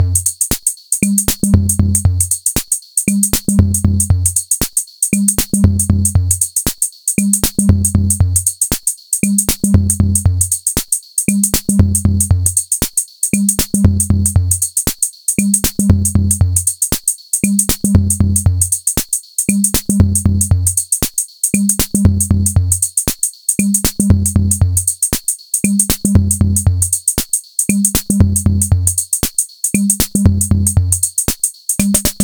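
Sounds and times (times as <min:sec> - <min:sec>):
music groove: 0:00.0 - 0:32.2.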